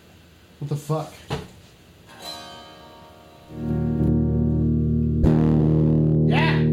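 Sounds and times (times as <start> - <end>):
speech: 0.6 - 1.4
electric instrument played through distortion effect: 2.1 - 6.7.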